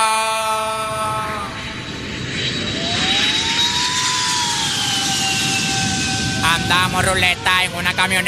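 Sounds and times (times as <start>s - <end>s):
jet airplane landing: 0.0s - 8.2s
speech: 6.7s - 8.2s.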